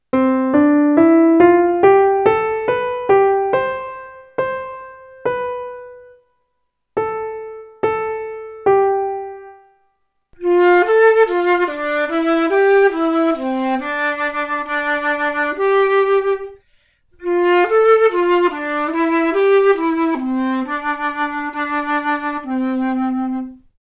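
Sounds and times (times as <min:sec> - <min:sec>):
piano: 0:00.0 - 0:23.8
transverse flute playing C1: 0:10.4 - 0:16.6, 0:17.2 - 0:23.7.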